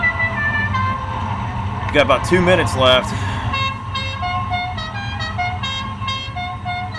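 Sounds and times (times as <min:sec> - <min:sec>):
car horn blaring: 0:00.0 - 0:01.1, 0:03.2 - 0:06.9
low engine rumble: 0:00.0 - 0:06.9
speech: 0:01.9 - 0:03.3.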